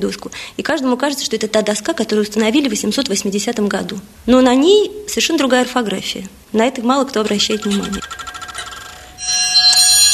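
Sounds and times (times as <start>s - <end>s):
speech: 0.0s - 8.3s
old period clock chiming in a historic apartment: 9.0s - 10.1s.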